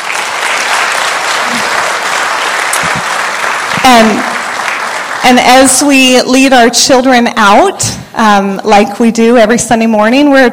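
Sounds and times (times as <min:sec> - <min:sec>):
audience applauding: 0:00.0 - 0:05.4
speech: 0:03.9 - 0:04.3, 0:05.2 - 0:10.5.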